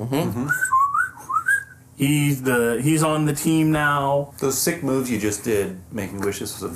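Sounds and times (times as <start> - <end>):
speech: 0.0 - 0.7, 2.0 - 6.7
person whistling a short wavering melody: 0.4 - 1.8.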